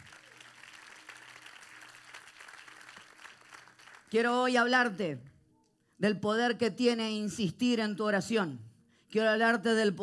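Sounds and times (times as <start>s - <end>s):
audience applauding: 0.0s - 4.2s
speech: 4.1s - 5.3s, 6.0s - 10.0s.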